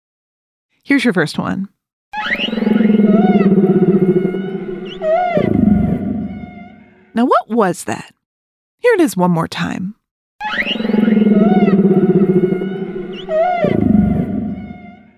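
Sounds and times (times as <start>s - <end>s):
speech: 0.8s - 2.5s, 7.2s - 8.2s, 8.9s - 10.7s
humpback whale song: 2.2s - 7.1s, 10.4s - 15.1s.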